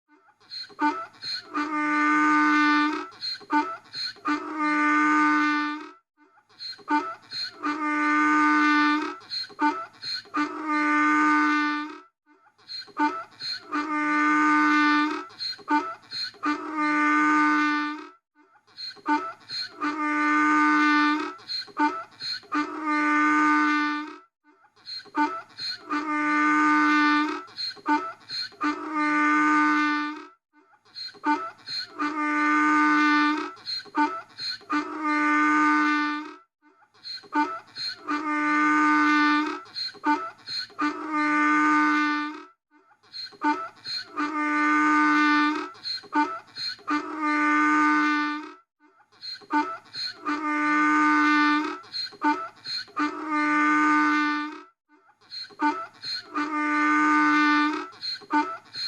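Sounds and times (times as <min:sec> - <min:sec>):
donkey braying: 0:00.4 - 0:05.9, 0:06.5 - 0:12.0, 0:12.6 - 0:24.2, 0:24.8 - 0:30.3, 0:30.9 - 0:36.4, 0:37.0 - 0:42.4, 0:43.0 - 0:48.6, 0:49.2 - 0:58.8.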